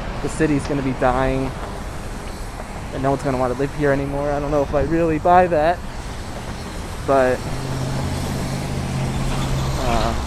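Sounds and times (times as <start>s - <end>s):
car traffic crossing a bridge: 0.0s - 10.2s
speech: 0.2s - 1.7s, 2.9s - 5.9s, 7.1s - 7.7s.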